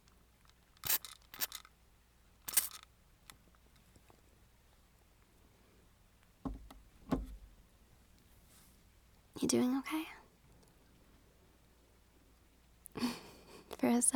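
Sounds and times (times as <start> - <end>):
spray bottle spritzing rubbing alcohol onto a cut: 0.8 - 1.6, 2.5 - 2.8
soft dull thumps: 6.4 - 7.6
speech: 9.4 - 10.2.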